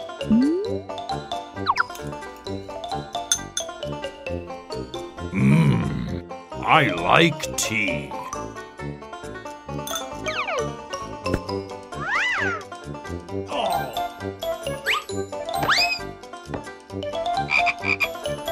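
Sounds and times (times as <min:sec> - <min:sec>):
playful cartoon music: 0:00.0 - 0:18.5
speech: 0:00.2 - 0:01.3, 0:06.7 - 0:08.2
toad croaking: 0:17.5 - 0:18.2.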